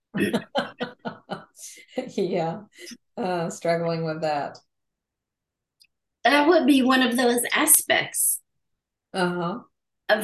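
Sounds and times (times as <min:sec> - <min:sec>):
speech: 0:00.1 - 0:00.6, 0:01.6 - 0:04.7, 0:06.2 - 0:08.4, 0:09.1 - 0:10.2
person coughing: 0:00.2 - 0:00.6
laughter: 0:00.2 - 0:02.1.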